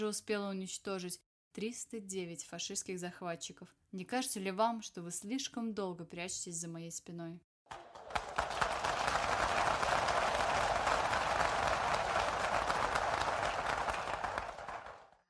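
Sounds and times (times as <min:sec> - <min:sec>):
speech: 0:00.0 - 0:07.8
large hall audience applauding: 0:07.7 - 0:15.2.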